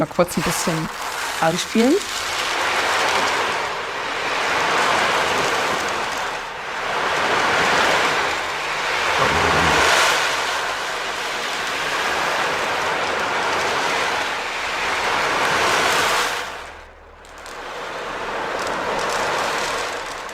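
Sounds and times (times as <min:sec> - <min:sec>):
speech: 0:00.0 - 0:02.3
ocean drum beads rolling imitating sea waves: 0:00.0 - 0:20.3.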